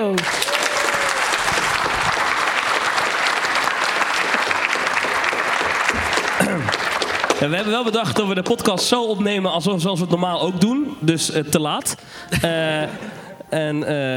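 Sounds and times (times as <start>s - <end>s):
audience applause: 0.0s - 8.8s
audience voices whooping: 0.1s - 2.8s
speech: 7.4s - 14.1s.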